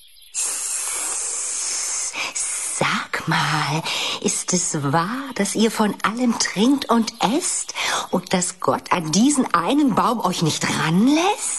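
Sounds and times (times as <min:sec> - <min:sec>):
snake hissing: 0:00.4 - 0:04.7
speech: 0:02.3 - 0:11.5.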